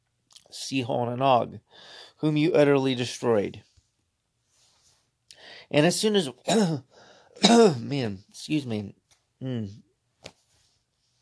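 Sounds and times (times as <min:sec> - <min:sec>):
speech: 0:00.6 - 0:03.7, 0:05.7 - 0:10.4
sharp cough caused by a tortilla chip crumb stuck in the throat: 0:06.4 - 0:07.9
throat clearing caused by a tortilla chip crumb stuck in the throat: 0:06.5 - 0:06.8, 0:07.4 - 0:07.9.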